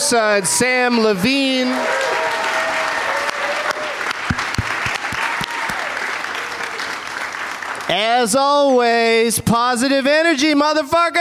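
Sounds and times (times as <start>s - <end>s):
live audience applauding: 0.0s - 8.7s
speech: 0.1s - 2.0s, 7.9s - 11.1s.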